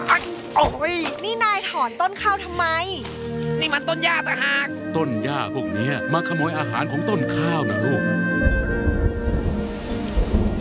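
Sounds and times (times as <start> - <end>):
speech: 0.6 - 8.6
rain falling over a rice field: 8.6 - 10.5.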